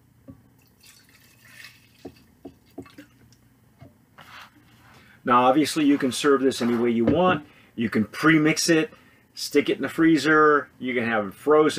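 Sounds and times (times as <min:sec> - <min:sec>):
tequila drink pouring into a tin cup: 0:00.6 - 0:03.1
speech: 0:05.3 - 0:11.7.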